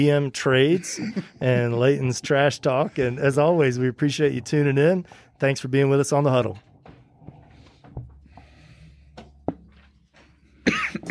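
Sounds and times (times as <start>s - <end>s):
speech: 0.0s - 6.7s
person coughing in short sharp bursts: 0.8s - 1.4s, 10.6s - 11.0s.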